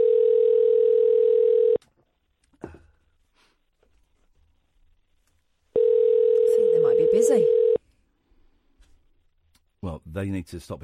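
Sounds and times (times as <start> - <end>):
electronic ringback tone on an outgoing phone call: 0.0 - 1.8, 5.8 - 7.8
speech: 10.2 - 10.8.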